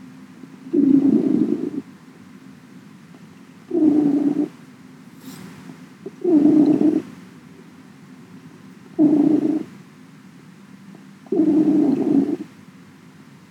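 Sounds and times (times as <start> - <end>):
cat purring: 0.7 - 1.9, 3.7 - 4.6, 6.1 - 7.2, 9.0 - 9.8, 11.3 - 12.5.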